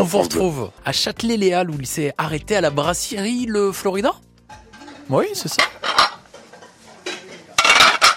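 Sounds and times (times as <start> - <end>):
speech: 0.0 - 4.3, 5.1 - 6.0
low continuous bustle in a brasserie kitchen: 4.4 - 8.1
pots and pans clattering in a brasserie kitchen: 4.5 - 8.1.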